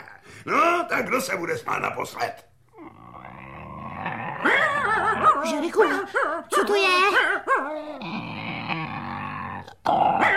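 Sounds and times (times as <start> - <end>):
speech: 0.4 - 2.5, 4.4 - 8.3
bear growling: 2.7 - 5.8, 7.4 - 10.3.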